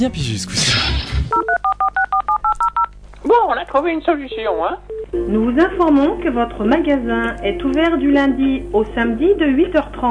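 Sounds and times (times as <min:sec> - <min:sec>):
speech: 0:00.0 - 0:01.4, 0:03.3 - 0:10.0
telephone keypad dialing tones: 0:01.3 - 0:02.9.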